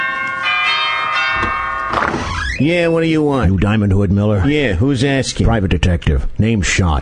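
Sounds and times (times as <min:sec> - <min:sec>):
doorbell chiming: 0:00.0 - 0:03.3
speech: 0:02.6 - 0:07.0.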